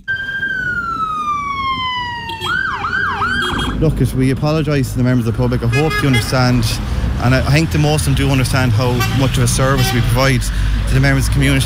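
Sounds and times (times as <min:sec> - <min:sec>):
loud ambulance siren: 0:00.0 - 0:03.8
low rumble of traffic: 0:00.0 - 0:11.6
speech: 0:03.8 - 0:11.6.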